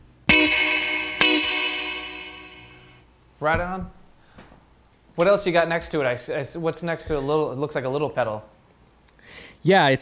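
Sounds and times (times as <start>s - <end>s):
plucked guitar through a 1963 Fender tube spring reverb tank with compression: 0.3s - 3.0s
speech: 3.4s - 4.0s, 5.2s - 8.6s, 9.6s - 10.0s.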